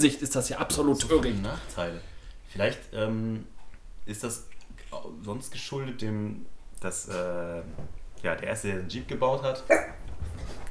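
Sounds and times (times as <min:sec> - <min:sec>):
speech: 0:00.0 - 0:10.0
faint dog bark: 0:09.6 - 0:10.0.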